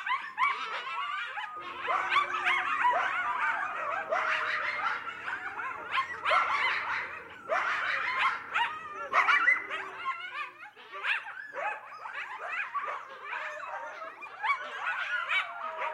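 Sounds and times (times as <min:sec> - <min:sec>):
coyote pack yip-howling: 0:00.0 - 0:15.9.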